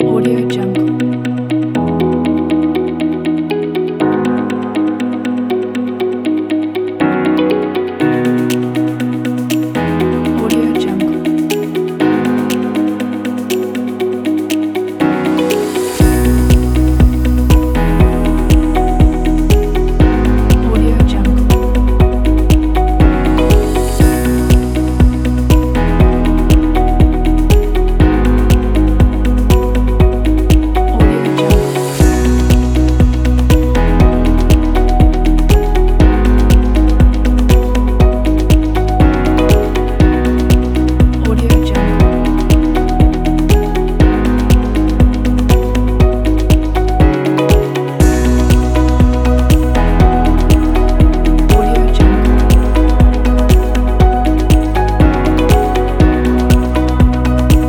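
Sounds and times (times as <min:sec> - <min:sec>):
corporate motivational dynamic music: 0:00.0 - 0:57.6.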